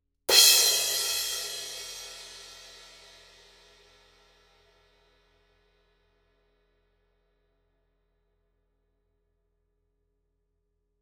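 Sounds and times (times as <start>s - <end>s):
Paiste 2002 18 crash cymbal hit harder: 0.3s - 3.6s.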